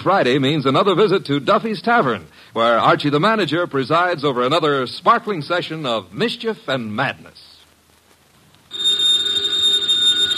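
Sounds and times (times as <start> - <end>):
speech: 0.0 - 7.4
telephone bell ringing: 8.7 - 10.3.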